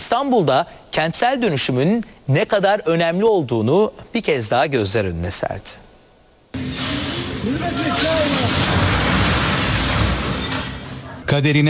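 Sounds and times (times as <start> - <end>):
speech: 0.1 - 5.8, 7.4 - 8.8, 11.3 - 11.6
loud sustained roar of rumbling debris: 6.6 - 11.2
upper part of an abandoned two-storey building collapsing onto the street in Istanbul: 6.6 - 11.3
voices crying out faintly: 7.1 - 9.1.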